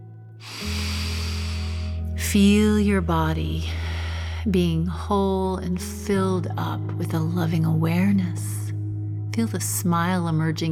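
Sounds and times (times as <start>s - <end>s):
deep breath in: 0.4s - 2.2s
low sustained droning tone: 0.4s - 10.7s
speech: 2.3s - 3.8s, 4.4s - 8.5s, 9.4s - 10.7s.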